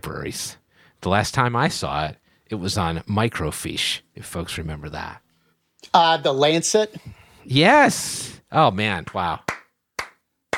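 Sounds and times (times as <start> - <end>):
speech: 0.0 - 5.2, 5.8 - 9.5
hand claps from a lone clapper: 9.0 - 10.5.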